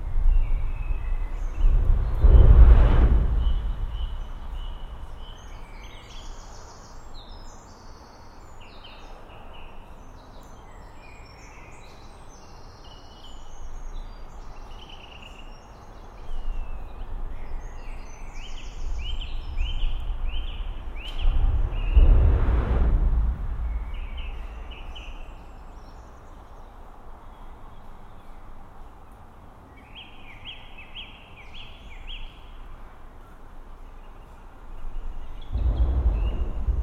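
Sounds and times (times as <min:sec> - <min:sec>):
low rumbles under a steel bridge at dusk: 0:00.1 - 0:05.8, 0:19.3 - 0:26.1, 0:35.5 - 0:36.8.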